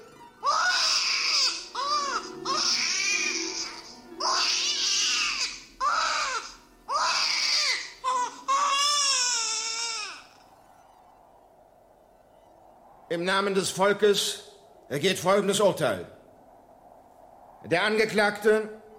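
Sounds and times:
baby crying: 0:00.0 - 0:10.5
speech: 0:13.1 - 0:16.2, 0:17.6 - 0:18.8.

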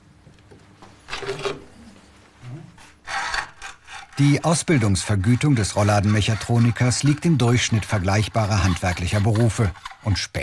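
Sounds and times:
hand saw cutting through a thin strip of wood: 0:03.0 - 0:10.3
speech: 0:04.2 - 0:10.4.

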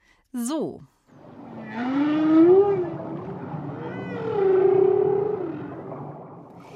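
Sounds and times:
speech: 0:00.3 - 0:01.0
low watery hum: 0:01.0 - 0:06.7
whale song moaning calls: 0:01.1 - 0:06.7.

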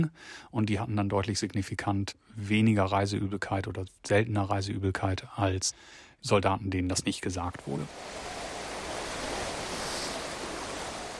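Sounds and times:
speech: 0:00.0 - 0:08.4
ocean surf with waves rolling in: 0:07.6 - 0:11.1.

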